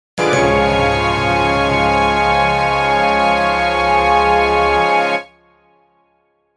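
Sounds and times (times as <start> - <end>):
orchestral boom: 0.2 - 4.5.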